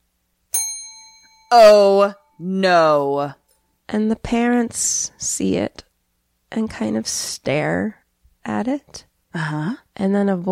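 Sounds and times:
small bell ringing: 0.5 - 2.6
speech: 1.5 - 5.9, 6.5 - 10.5.

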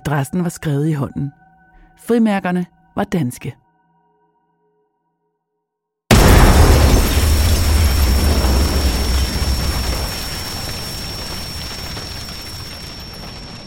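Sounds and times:
speech: 0.0 - 1.4, 2.0 - 3.6
letter bomb explosion: 6.1 - 13.6.

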